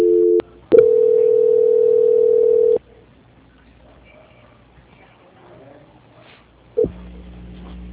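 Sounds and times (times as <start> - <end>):
telephone tones on a line during a call transfer: 0.0 - 2.8.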